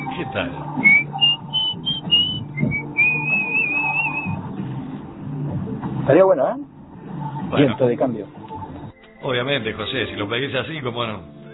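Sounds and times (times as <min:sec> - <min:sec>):
high whistled melody in a song intro: 0:00.0 - 0:04.6, 0:08.8 - 0:10.2
quieter low backing music: 0:00.0 - 0:11.5
speech: 0:00.2 - 0:01.0, 0:06.1 - 0:06.7, 0:07.5 - 0:08.4, 0:09.2 - 0:11.4.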